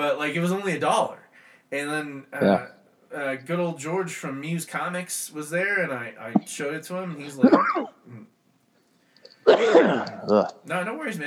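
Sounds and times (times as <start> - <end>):
speech: 0.0 - 8.3, 9.4 - 11.2
person coughing: 7.4 - 8.2, 9.5 - 10.5
throat clearing: 7.4 - 8.3, 9.5 - 10.6.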